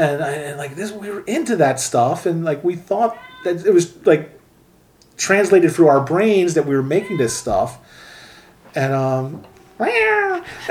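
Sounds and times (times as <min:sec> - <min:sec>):
speech: 0:00.0 - 0:04.4, 0:05.2 - 0:08.0, 0:08.7 - 0:10.6
quiet hum: 0:00.0 - 0:10.6
cat meowing: 0:03.1 - 0:03.7, 0:06.8 - 0:07.8, 0:09.3 - 0:10.5.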